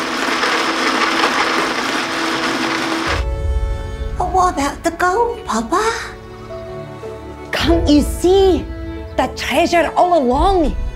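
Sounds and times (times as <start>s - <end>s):
kitchen blender running: 0.0s - 3.3s
speech: 4.5s - 6.2s, 7.6s - 10.8s.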